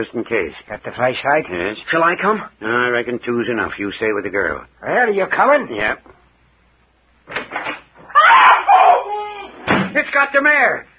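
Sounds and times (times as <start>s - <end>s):
speech: 0.0s - 6.1s, 10.0s - 10.9s
long loud harsh shrieking: 8.1s - 9.5s
bedroom door banging shut: 9.6s - 10.0s.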